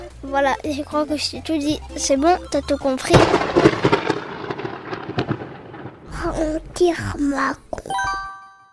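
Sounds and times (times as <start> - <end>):
speech: 0.3 - 3.9, 6.2 - 8.2
thunder after a lightning strike: 3.1 - 7.4.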